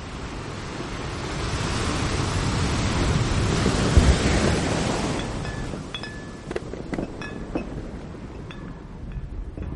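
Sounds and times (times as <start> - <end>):
big ocean wave slamming into the left side of a huge cruise ship: 0.0 - 6.4
faint ringing tones: 5.1 - 9.7
metallic clinks: 5.2 - 7.7.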